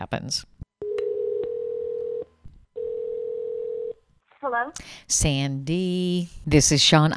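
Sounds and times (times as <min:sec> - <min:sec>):
speech: 0:00.1 - 0:00.5, 0:04.4 - 0:07.1
telephone dial tone humming: 0:00.8 - 0:02.2, 0:02.8 - 0:04.0.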